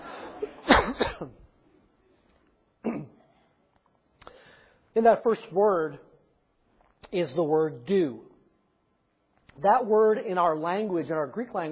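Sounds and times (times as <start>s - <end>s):
hacking coughing fit: 0.0s - 1.5s, 2.8s - 3.6s
speech: 5.0s - 6.1s, 7.1s - 8.3s, 9.6s - 11.6s.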